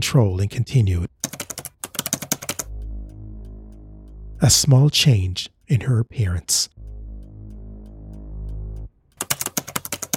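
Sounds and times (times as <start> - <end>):
speech: 0.0 - 1.2, 4.4 - 6.8
typing on a computer keyboard: 1.1 - 2.7, 9.2 - 10.1
low steady hum: 2.7 - 9.2.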